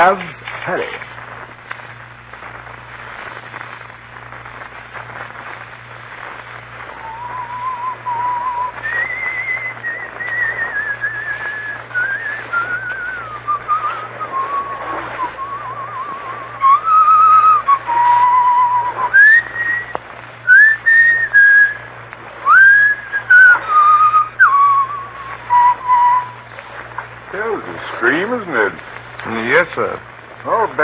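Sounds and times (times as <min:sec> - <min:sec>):
speech: 0:00.0 - 0:01.1
faint steady hum: 0:00.0 - 0:30.8
man whistling a slow lilting Scottish folk tune: 0:07.0 - 0:26.4.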